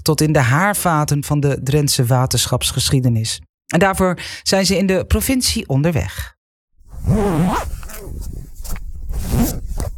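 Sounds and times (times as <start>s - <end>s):
speech: 0.0s - 6.4s, 7.0s - 9.9s
jacket zipper being pulled open: 6.8s - 9.9s.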